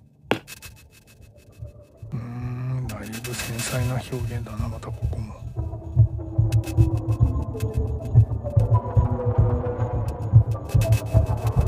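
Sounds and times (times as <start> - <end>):
speech: 3.3 - 5.5
electronic music with deep throbbing hum: 6.4 - 11.6.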